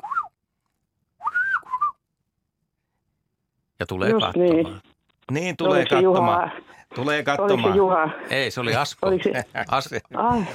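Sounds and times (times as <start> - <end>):
person whistling imitating a golden oriole song in a studio: 1.2 - 2.0
speech: 3.8 - 10.5.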